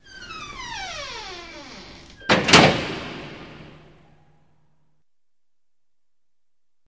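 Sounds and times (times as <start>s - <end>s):
classroom door closing: 0.0s - 4.4s.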